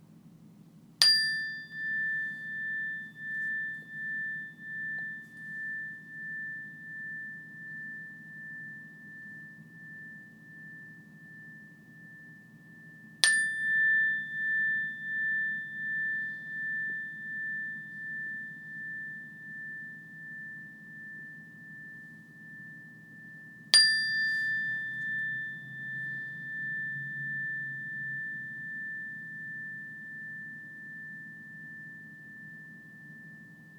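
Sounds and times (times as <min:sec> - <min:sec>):
meditation bell struck and ringing: 0:01.0 - 0:33.7.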